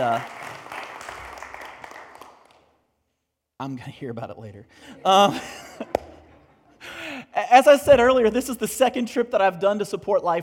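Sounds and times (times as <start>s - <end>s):
speech: 0.0s - 0.4s, 3.6s - 6.0s, 7.5s - 10.4s
audience applause for a woman being honoured: 0.0s - 2.6s
laughter: 4.8s - 6.9s.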